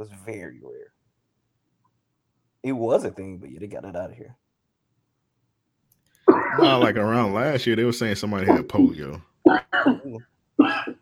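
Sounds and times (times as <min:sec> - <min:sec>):
speech: 0:00.0 - 0:01.0, 0:02.6 - 0:04.4, 0:06.6 - 0:11.0
coughing: 0:06.2 - 0:07.0, 0:08.4 - 0:11.0.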